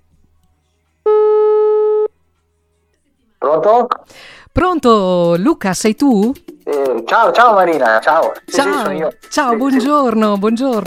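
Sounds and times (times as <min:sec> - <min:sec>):
telephone ringing tone while placing a call: 0:01.1 - 0:02.1
speech: 0:03.6 - 0:10.8.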